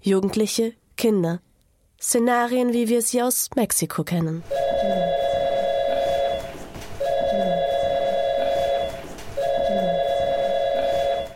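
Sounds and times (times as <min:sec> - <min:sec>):
speech: 0:00.0 - 0:05.1
electronic telephone ringing at home: 0:04.4 - 0:11.3.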